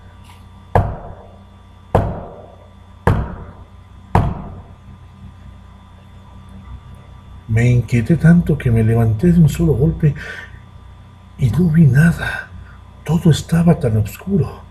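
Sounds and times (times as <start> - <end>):
loud solid knocks with short ringing decay: 0.8 - 4.7
speech: 7.5 - 10.5, 11.4 - 12.4, 13.0 - 14.6.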